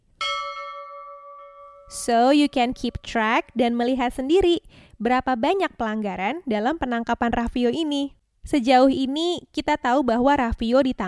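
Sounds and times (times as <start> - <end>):
single bell struck and ringing: 0.1 - 3.0
speech: 1.9 - 11.0.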